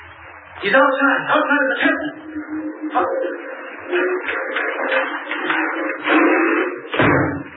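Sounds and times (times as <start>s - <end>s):
speech: 0.6s - 2.2s, 2.9s - 7.3s
heavy door scraping and rumbling: 1.9s - 7.5s
heavy door slamming shut with a deep booming thud: 6.1s - 7.5s.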